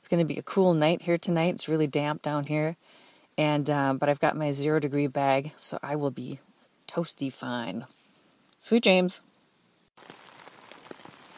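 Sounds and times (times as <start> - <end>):
speech: 0.1 - 8.0, 8.6 - 9.3
steady rain on taut tent fabric: 10.0 - 11.3.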